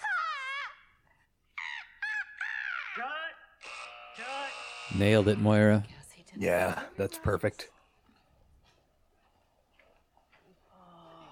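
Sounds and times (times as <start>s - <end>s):
crow cawing: 1.6s - 4.0s
speech: 3.0s - 3.2s, 4.2s - 7.8s.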